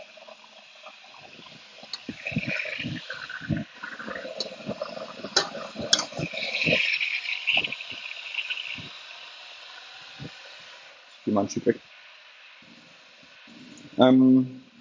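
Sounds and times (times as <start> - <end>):
water running and splashing into an electric kettle: 0.0 - 11.3
faint rising hiss of an electric kettle: 0.0 - 14.8
speech: 11.4 - 11.9, 14.0 - 14.6.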